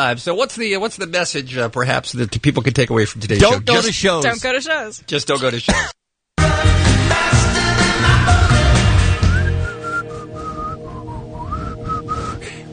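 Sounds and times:
speech: 0.0 - 6.0
full band backing music: 6.4 - 10.9
person whistling a lilting melody: 9.1 - 12.6.

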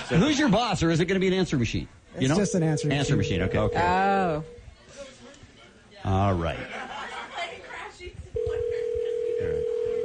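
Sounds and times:
laughter: 0.0 - 0.5, 6.5 - 7.8
speech: 0.1 - 5.1, 6.0 - 6.9
people chattering: 2.0 - 10.0
phone ringback tone from outgoing call: 2.3 - 4.6, 8.4 - 10.0.

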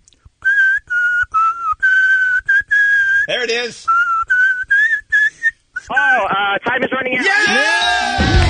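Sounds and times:
man whistling a song's melody: 0.4 - 3.3, 3.9 - 5.9
speech: 3.3 - 4.0, 5.9 - 8.4.

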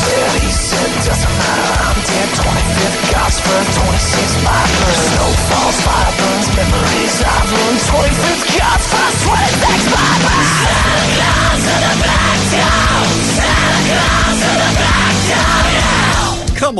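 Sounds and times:
loud dense rock track with heavy driving guitars and drums: 0.0 - 16.7
male vocalist yelling and screaming over rock music: 8.5 - 16.4.

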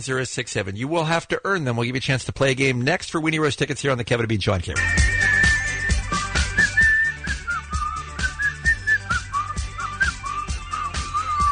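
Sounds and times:
speech: 0.0 - 5.2
person whistling a wandering melody: 4.8 - 11.5
steady rhythmic backing beat: 4.8 - 11.5.

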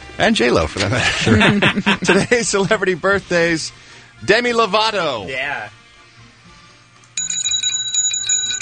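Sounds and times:
speech: 0.2 - 5.8
laughter: 0.8 - 2.8
bicycle bell ringing: 7.2 - 8.6.

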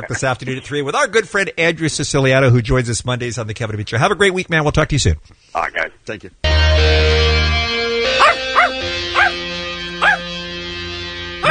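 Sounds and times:
speech: 0.0 - 7.1
dog giving short yelping barks: 8.2 - 9.4, 10.0 - 10.3.

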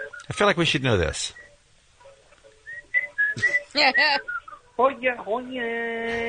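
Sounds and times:
man whistling a jaunty tune on voicemail: 0.0 - 0.4, 1.3 - 1.6, 2.6 - 4.7
speech: 0.2 - 1.4, 3.4 - 6.2.

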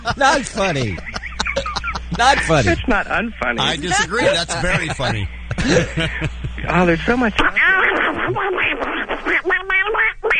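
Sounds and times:
speech: 0.0 - 1.1, 2.1 - 10.3
laughter: 0.0 - 3.0, 3.6 - 7.0
pet duck quacking: 7.6 - 10.3.

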